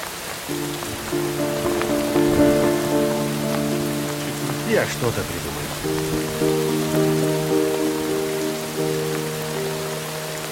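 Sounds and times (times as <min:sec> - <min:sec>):
heavy downpour in the street outside a shop porch: 0:00.0 - 0:10.5
sustained tonal notes: 0:00.5 - 0:09.8
speech: 0:04.8 - 0:06.4.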